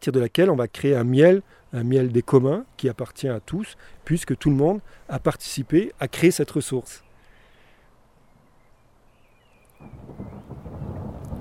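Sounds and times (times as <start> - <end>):
speech: 0.0 - 7.0
distant thunder rumbling: 9.8 - 11.4.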